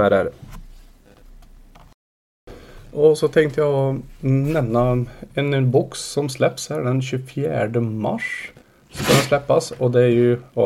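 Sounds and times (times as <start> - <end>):
speech: 0.0 - 0.4, 3.0 - 10.6
dog sneezing: 8.9 - 9.3.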